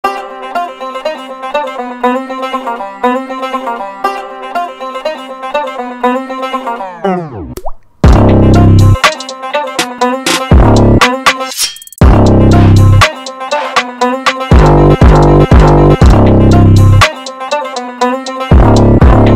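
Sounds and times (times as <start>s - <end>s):
banjo playing a beat: 0.0s - 7.4s, 8.2s - 19.3s.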